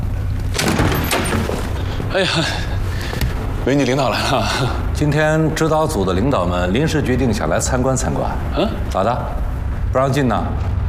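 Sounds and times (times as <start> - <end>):
steady low hum: 0.0 - 10.8
door being opened: 0.4 - 2.1
speech: 2.1 - 2.7, 3.6 - 10.7.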